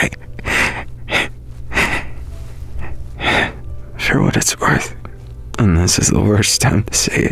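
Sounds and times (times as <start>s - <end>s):
congested breathing through a clogged nose: 0.0s - 5.4s
speech: 4.2s - 5.0s, 5.6s - 7.3s.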